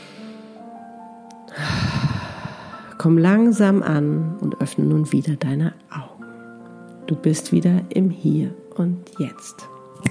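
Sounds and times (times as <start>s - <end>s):
deep breath in and out during a relaxation exercise: 1.5s - 3.0s
speech: 3.0s - 6.1s, 7.1s - 10.1s.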